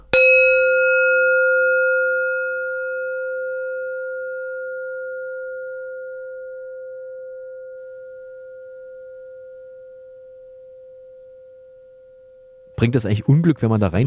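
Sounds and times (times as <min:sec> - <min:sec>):
gong struck and ringing out: 0:00.0 - 0:03.2
speech: 0:12.8 - 0:14.0.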